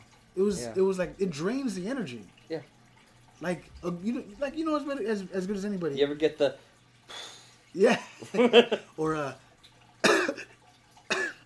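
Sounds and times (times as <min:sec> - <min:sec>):
speech: 0:00.4 - 0:02.8, 0:03.4 - 0:09.4
laughter: 0:08.2 - 0:08.8
person coughing: 0:10.0 - 0:10.5, 0:11.1 - 0:11.4.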